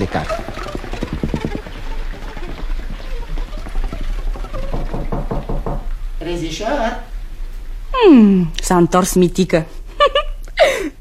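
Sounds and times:
speech: 0.0 - 0.5, 6.3 - 7.1, 8.0 - 9.8
someone knocking on a door in quick rhythmic bursts: 0.0 - 6.0.

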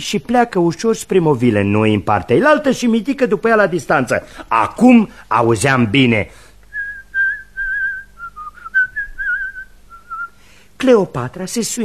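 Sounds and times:
speech: 0.0 - 6.4, 10.8 - 11.8
whistled melody: 6.8 - 10.4.

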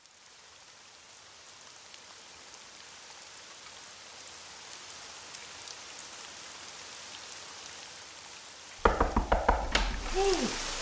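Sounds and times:
steady soft rain falling: 0.0 - 10.7
sharp knocking clatters: 8.8 - 10.1.

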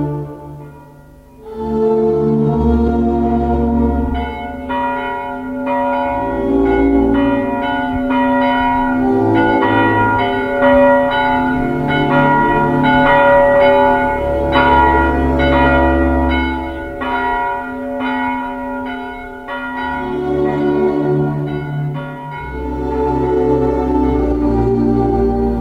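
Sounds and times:
church bells tolling for a death: 0.1 - 25.5.

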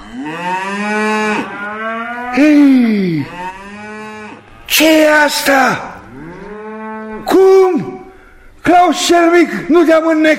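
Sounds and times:
cattle in a herd being driven along mooing: 0.0 - 4.5, 6.0 - 7.3
speech: 0.2 - 0.6, 2.4 - 3.4, 4.7 - 5.9, 7.3 - 7.9, 8.6 - 10.3.

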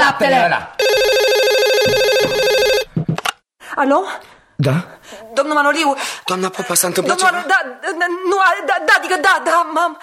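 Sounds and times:
speech: 0.2 - 0.8, 1.8 - 2.5, 3.8 - 10.0
telephone ringing with a loud electronic warbling ringtone in a home: 0.8 - 2.9.

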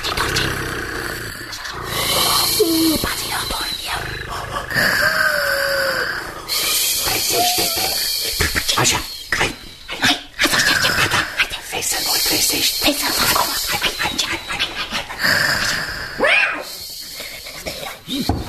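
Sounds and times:
person imitating a cat purring with a rough rumble: 0.0 - 9.2, 10.0 - 18.4.

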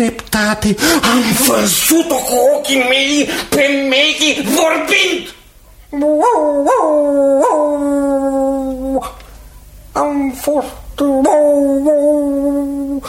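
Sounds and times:
speech: 0.0 - 9.2, 10.0 - 13.0
small dog howling and whimpering: 5.9 - 9.0, 11.0 - 13.0.

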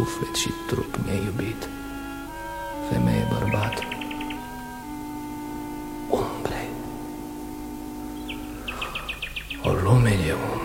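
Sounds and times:
speech: 0.0 - 1.8
nightingale singing: 0.0 - 10.6
low hum: 2.3 - 9.1.

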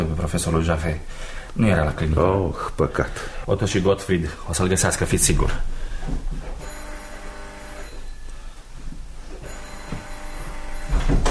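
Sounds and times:
speech: 0.3 - 6.3
telephone ringing: 6.6 - 8.3, 9.4 - 11.2.

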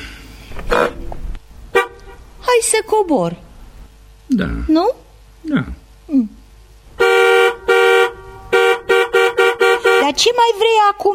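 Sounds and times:
stationary car horn honking in short loud blasts: 1.7 - 2.2, 6.9 - 10.3
speech: 2.6 - 3.5, 4.3 - 6.3, 10.1 - 11.1.

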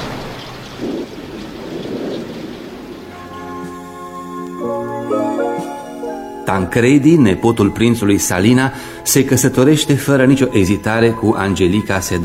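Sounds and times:
steady rain with a deep rumble: 0.0 - 6.4
sustained music: 2.4 - 12.2
speech: 6.5 - 12.2.

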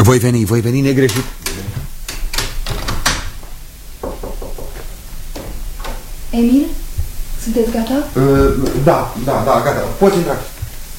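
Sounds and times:
speech: 0.0 - 1.7, 6.4 - 6.8, 7.4 - 10.5
back door opening and closing: 0.9 - 6.3.

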